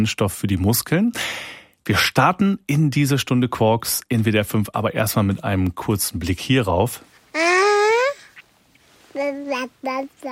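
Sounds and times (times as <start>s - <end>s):
speech: 0.0s - 7.1s, 9.2s - 10.3s
baby babbling and cooing: 7.3s - 8.4s, 9.1s - 10.3s.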